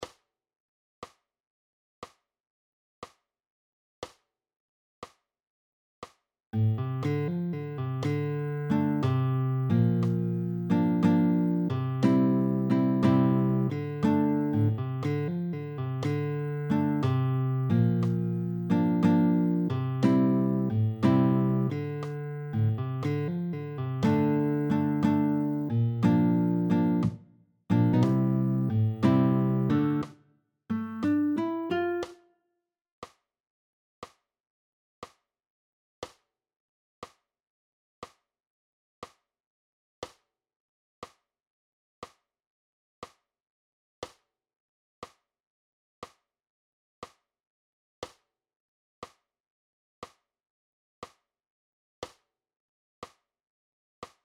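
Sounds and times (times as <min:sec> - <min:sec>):
nylon-string guitar: 0:06.6 - 0:30.1, 0:30.7 - 0:32.0.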